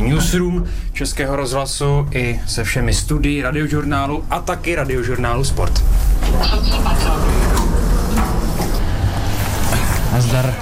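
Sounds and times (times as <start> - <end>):
elevator ride mechanical rumble: 0.0 - 10.5
speech: 0.2 - 7.5, 10.3 - 10.5
elevator sliding doors clattering: 5.4 - 10.5.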